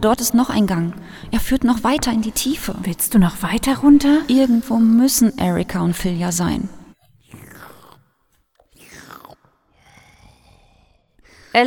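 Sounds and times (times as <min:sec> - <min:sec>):
speech: 0:00.0 - 0:06.8
person slurping and chewing: 0:07.0 - 0:11.0.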